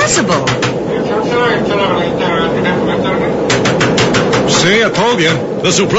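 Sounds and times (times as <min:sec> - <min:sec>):
roar of an airplane cabin in flight: 0:00.0 - 0:05.9
speech: 0:00.2 - 0:00.6, 0:01.3 - 0:03.5, 0:04.5 - 0:05.9
knocking on an airplane door: 0:00.4 - 0:00.8, 0:03.5 - 0:04.6.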